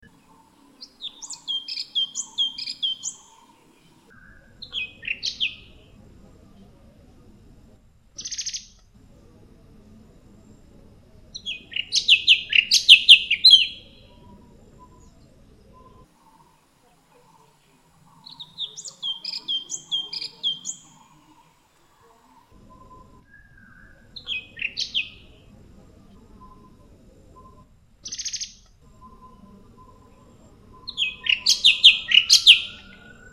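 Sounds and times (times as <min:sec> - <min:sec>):
cucak cungkok bird calling: 0:00.0 - 0:05.8, 0:11.4 - 0:15.1, 0:15.8 - 0:21.6, 0:22.2 - 0:25.3, 0:27.4 - 0:33.3.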